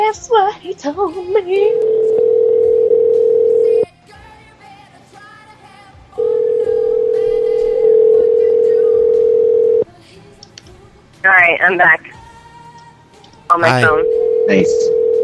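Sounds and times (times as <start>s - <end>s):
speech: 0.1s - 2.4s, 11.5s - 12.1s, 13.5s - 15.0s
telephone dial tone while someone places a call: 1.7s - 3.9s, 6.2s - 9.9s, 13.9s - 15.2s.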